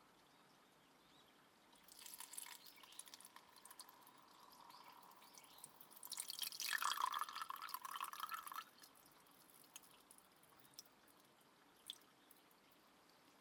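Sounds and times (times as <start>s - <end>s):
hot water poured into a cup for tea: 1.8s - 9.0s
water dripping: 1.8s - 13.3s.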